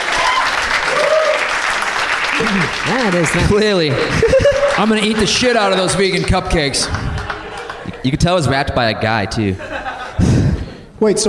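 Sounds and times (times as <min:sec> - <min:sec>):
audience applause: 0:00.0 - 0:08.8
laughter: 0:02.3 - 0:10.8
speech: 0:02.4 - 0:07.1, 0:08.0 - 0:09.8, 0:11.0 - 0:11.2.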